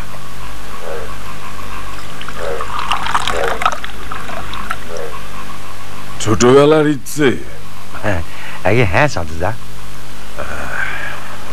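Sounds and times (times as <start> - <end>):
liquid being poured in a steady stream: 2.0 - 5.1
speech: 6.3 - 9.7.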